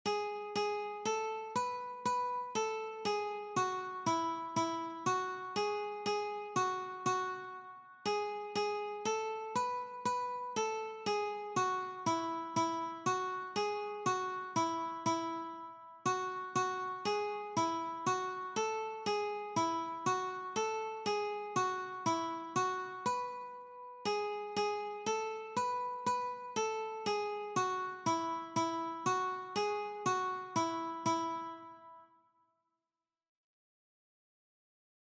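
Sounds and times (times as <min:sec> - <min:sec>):
classical melody on a one string guitar: 0:00.0 - 0:32.0.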